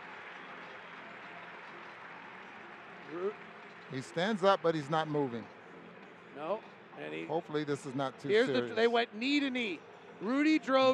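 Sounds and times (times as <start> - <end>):
arena crowd cheering: 0.0 - 5.4
speech: 3.1 - 5.6, 6.4 - 10.9.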